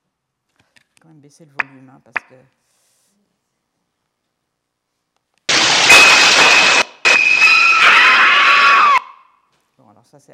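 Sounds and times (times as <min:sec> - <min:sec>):
speech: 0:01.0 - 0:02.8, 0:10.1 - 0:10.3
harsh strident music blasts with shrill high tones: 0:05.5 - 0:09.0.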